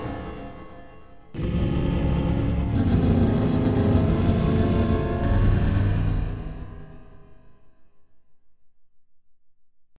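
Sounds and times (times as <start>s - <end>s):
pitch delay effect: 1.4s - 7.1s.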